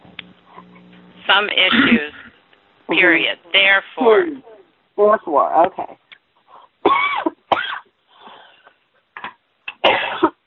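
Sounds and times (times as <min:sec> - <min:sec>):
speech: 0:01.3 - 0:02.2, 0:02.9 - 0:06.0
person coughing while choking on something caught in the throat: 0:01.7 - 0:02.3, 0:06.9 - 0:07.9, 0:09.8 - 0:10.4
strained breaths: 0:08.1 - 0:08.8.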